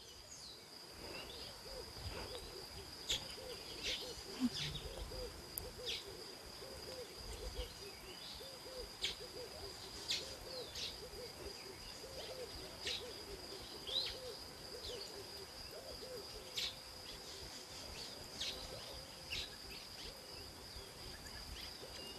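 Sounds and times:
many tropical birds chirping and calling: 0.0s - 22.1s
steady high insect drone: 0.0s - 22.1s
low hoots: 1.0s - 16.8s.

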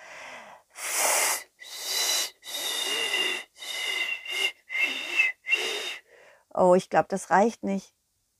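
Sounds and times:
breathy failed whistling attempts to call a pigeon: 0.8s - 6.1s
speech: 6.6s - 8.0s.

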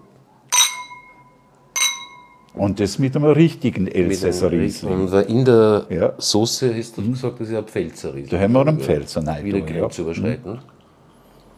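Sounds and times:
wine glasses clinking in a toast: 0.5s - 2.6s
speech: 2.6s - 10.7s.

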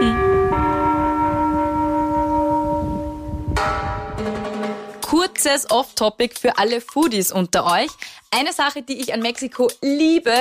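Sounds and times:
church bells ringing through loudspeakers: 0.0s - 4.8s
speech: 5.4s - 10.3s.

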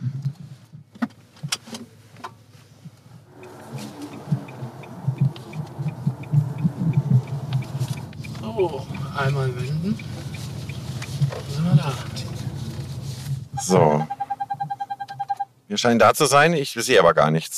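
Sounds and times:
low steady interior hum of an electric car: 2.0s - 15.4s
broad rushing road noise of a moving electric car: 2.8s - 13.6s
speech: 8.6s - 10.1s, 13.7s - 14.1s, 15.7s - 17.5s.

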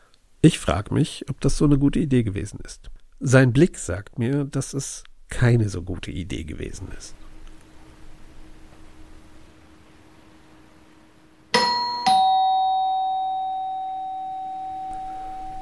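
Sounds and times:
quiet room hum: 0.0s - 15.6s
speech: 0.4s - 7.2s
doorbell chiming: 11.5s - 15.6s.

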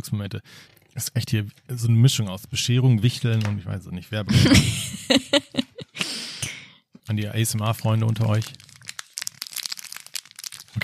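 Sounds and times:
speech: 0.0s - 5.7s, 7.1s - 8.6s
laughter: 4.3s - 6.2s
blue plastic fortune cookie wrapper crinkling while being opened: 7.1s - 10.8s.

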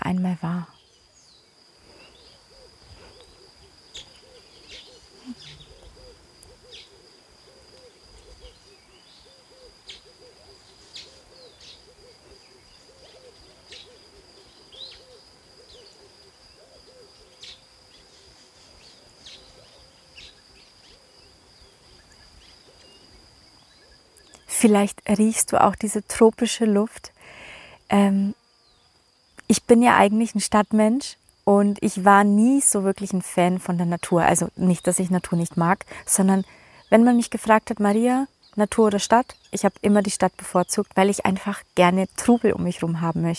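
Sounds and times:
steady high insect drone: 0.0s - 43.3s
speech: 0.1s - 0.8s, 24.6s - 27.2s, 27.9s - 28.4s, 29.5s - 43.3s
many tropical birds chirping and calling: 0.6s - 21.0s.

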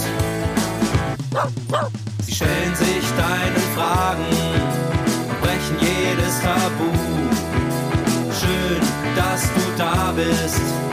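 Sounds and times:
music: 0.0s - 10.9s
dog barking: 1.3s - 1.9s
speech: 1.4s - 4.9s.

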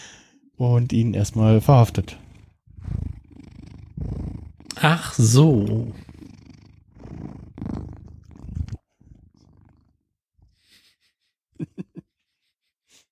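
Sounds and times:
speech: 0.6s - 2.2s, 4.8s - 6.1s
male cat purring: 0.8s - 10.6s.

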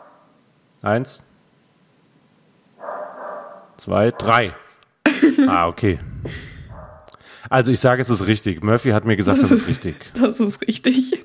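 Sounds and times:
speech: 0.8s - 1.3s, 3.8s - 4.6s, 5.2s - 6.5s, 7.4s - 11.2s
dog giving a drawn-out bark: 2.8s - 4.7s, 6.7s - 7.1s
laughter: 5.1s - 5.7s, 9.2s - 10.3s.

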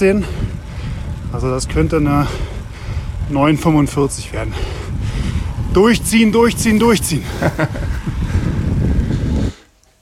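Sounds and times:
speech: 0.0s - 0.4s, 1.3s - 2.5s, 3.3s - 4.8s, 5.8s - 8.2s
strong wind buffeting the microphone on a mountain pass: 0.0s - 9.8s
laughter: 7.2s - 8.1s.

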